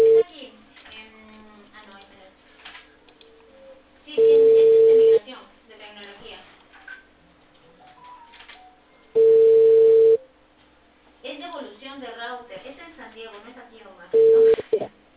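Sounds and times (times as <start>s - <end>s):
ringback tone of an outgoing telephone call: 0.0s - 0.2s, 4.2s - 5.2s, 9.2s - 10.2s, 14.2s - 14.8s.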